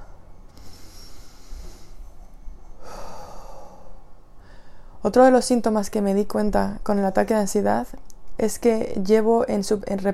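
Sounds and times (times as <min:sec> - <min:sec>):
slow deliberate deep breath taken as a breathing exercise: 0:00.0 - 0:05.0
speech: 0:05.0 - 0:10.1.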